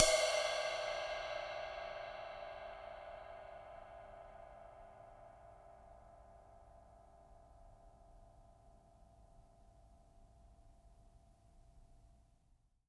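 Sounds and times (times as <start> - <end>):
acoustic ride cymbal: 0.0 - 3.9.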